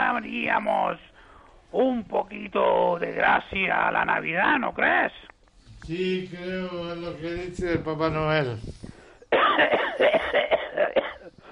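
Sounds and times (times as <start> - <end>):
speech: 0.2 - 8.9
person coughing harshly: 9.3 - 11.4.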